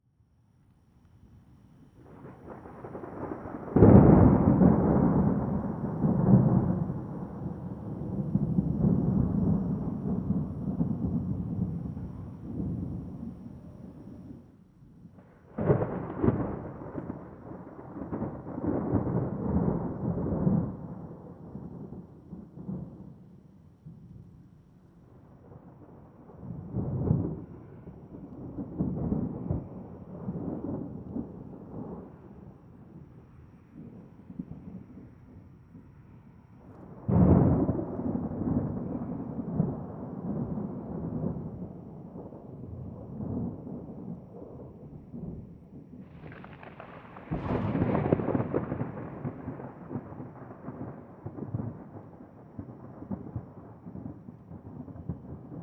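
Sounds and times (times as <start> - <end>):
super thunder: 2.0 - 14.5, 15.1 - 24.4, 25.2 - 35.9, 36.6 - 55.6.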